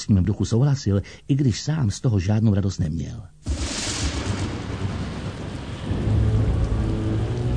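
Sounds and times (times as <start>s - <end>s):
speech: 0.0s - 3.4s
deep rolling rumble of thunder: 3.5s - 7.5s
steady heavy rain in a night storm around a shack by the sea: 3.5s - 7.5s.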